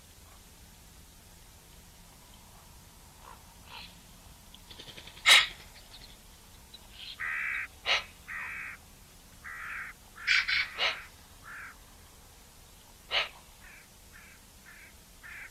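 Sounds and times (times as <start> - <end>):
Eurasian magpie Pica pica making drawn-out flat nasal squawks: 5.2 - 5.6, 7.1 - 8.8, 9.4 - 11.8, 13.1 - 15.5.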